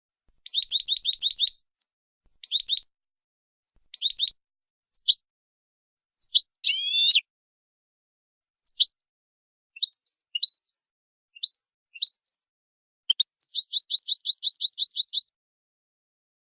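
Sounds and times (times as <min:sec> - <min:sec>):
European goldfinch singing in clean song style: 0:00.4 - 0:01.6, 0:02.4 - 0:02.9, 0:03.9 - 0:05.2, 0:06.2 - 0:07.3, 0:08.6 - 0:09.0, 0:09.8 - 0:12.4, 0:13.1 - 0:15.3.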